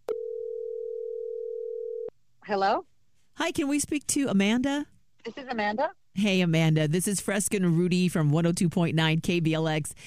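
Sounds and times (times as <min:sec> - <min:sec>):
telephone ringing tone while placing a call: 0:00.1 - 0:02.1
speech: 0:02.5 - 0:10.0.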